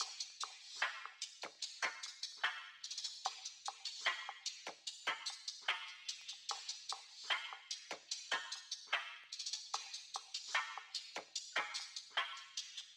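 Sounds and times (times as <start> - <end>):
percussion drum loop: 0.0 - 12.9.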